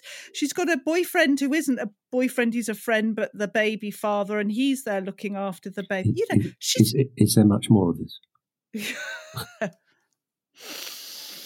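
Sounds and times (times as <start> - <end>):
speech: 0.3 - 9.8
wheezy sniffing breath in through the nose: 10.6 - 11.4.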